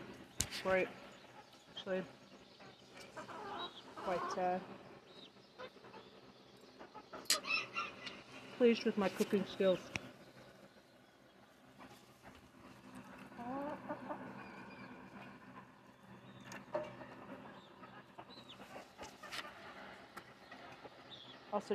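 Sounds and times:
chickens clucking and begging on someone's foot: 0.0s - 21.7s
speech: 0.6s - 1.1s, 1.8s - 2.2s, 4.0s - 4.8s, 8.6s - 10.0s
chickens squawking: 2.6s - 8.5s, 11.7s - 21.1s.

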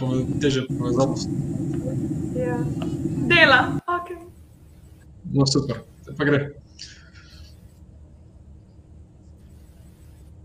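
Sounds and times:
road noise of a moving bus: 0.0s - 3.9s
speech: 0.0s - 4.2s, 5.2s - 7.0s
engine rumble inside a moving bus: 0.0s - 4.4s.

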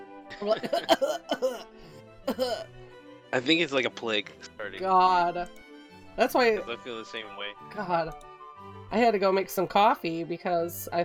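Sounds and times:
person coughing: 0.3s - 1.7s, 2.3s - 2.7s
speech: 0.4s - 5.6s, 6.2s - 8.3s, 8.9s - 11.0s.

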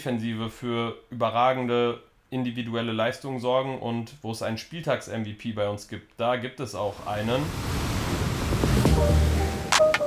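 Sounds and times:
speech: 0.0s - 7.8s
ocean surf waves breaking: 6.9s - 10.0s.

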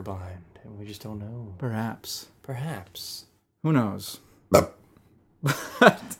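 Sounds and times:
speech: 0.0s - 4.8s, 5.4s - 6.1s
throaty burp: 4.5s - 4.8s.

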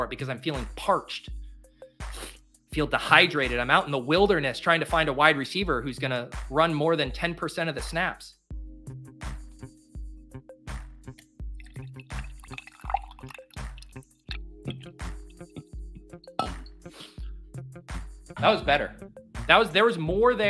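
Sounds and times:
speech: 0.0s - 1.4s, 2.0s - 9.3s, 18.4s - 20.4s
coffee dripping into a cup: 11.6s - 14.0s
small gurgling glugs: 11.6s - 15.8s.

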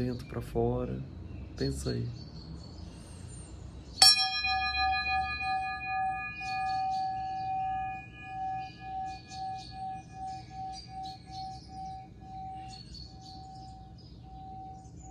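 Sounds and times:
speech: 0.0s - 2.3s
small bell ringing: 4.0s - 13.8s.

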